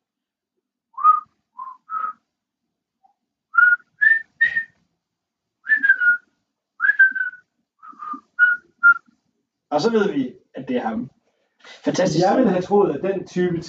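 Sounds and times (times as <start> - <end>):
person whistling a short melody: 1.0 - 2.2, 3.6 - 4.8, 5.7 - 6.2, 6.8 - 9.1
speech: 9.8 - 13.6.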